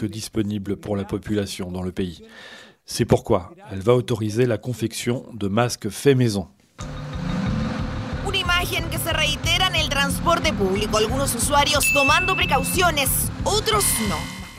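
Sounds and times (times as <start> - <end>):
speech: 0.0 - 6.9, 8.7 - 14.4
low engine rumble inside a city bus in Santiago: 6.8 - 14.2
passengers talking inside a city bus: 8.2 - 14.5
brief high electronic beep: 11.6 - 14.5.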